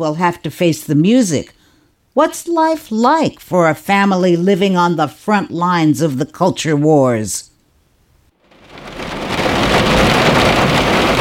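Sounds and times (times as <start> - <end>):
speech: 0.0 - 1.6, 2.2 - 7.5
steady heavy rain: 8.4 - 11.1.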